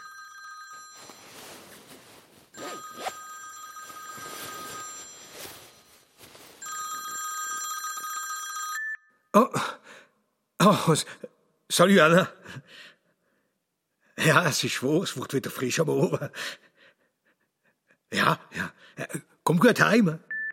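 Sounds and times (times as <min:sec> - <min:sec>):
telephone ringing in trilling bursts: 0:00.0 - 0:01.4, 0:02.6 - 0:09.1
speech: 0:09.4 - 0:09.7, 0:10.6 - 0:12.9, 0:14.2 - 0:16.6, 0:18.2 - 0:20.3.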